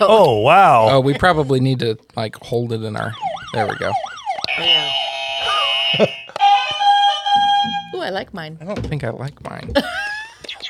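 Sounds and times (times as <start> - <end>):
speech: 0.0 - 5.0, 5.9 - 6.5, 8.0 - 10.6
small tabletop game buzzer sounding a loud electronic tone: 3.6 - 8.0.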